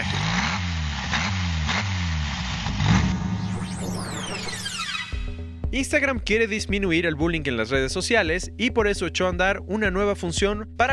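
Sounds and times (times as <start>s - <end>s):
Volkswagen Beetle car engine idling and revving: 0.0s - 5.4s
speech: 5.8s - 10.9s.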